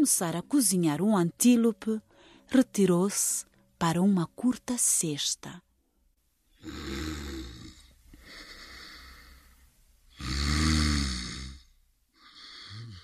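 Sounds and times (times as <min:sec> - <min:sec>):
speech: 0:00.0 - 0:05.7, 0:06.6 - 0:07.0
lion snoring with deep rumbling breaths: 0:06.6 - 0:07.9, 0:10.2 - 0:13.0.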